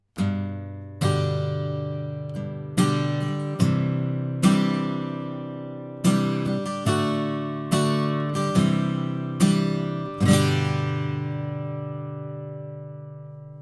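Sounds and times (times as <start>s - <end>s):
acoustic guitar recorded with an omni microphone: 0.0s - 13.6s.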